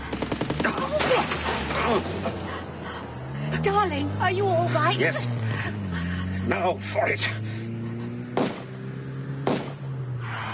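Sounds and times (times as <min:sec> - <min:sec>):
car engine droning steadily: 0:00.0 - 0:10.5
speech: 0:01.9 - 0:02.4, 0:03.6 - 0:05.8, 0:06.5 - 0:07.5
revolver shots aimed at a car's tire: 0:08.3 - 0:08.8, 0:09.4 - 0:09.8.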